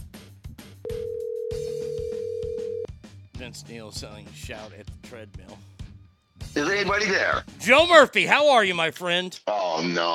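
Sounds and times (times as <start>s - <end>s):
ringback tone from an outgoing phone call: 0.9s - 2.9s
speech: 3.4s - 5.7s, 6.6s - 10.1s.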